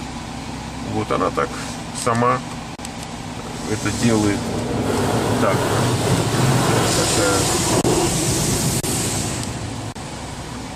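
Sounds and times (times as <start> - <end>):
speech: 0.9 - 2.6, 3.7 - 8.7
automatic car wash spraying a car with shampoo: 3.0 - 10.7.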